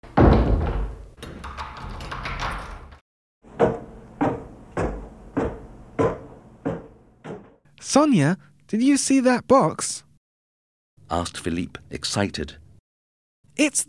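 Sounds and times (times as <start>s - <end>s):
door pushed shut: 0.0s - 7.6s
big key locking a door with rattling and clunking: 1.2s - 3.0s
thudding footsteps: 3.5s - 7.6s
speech: 7.8s - 10.1s, 11.1s - 12.6s, 13.6s - 13.8s.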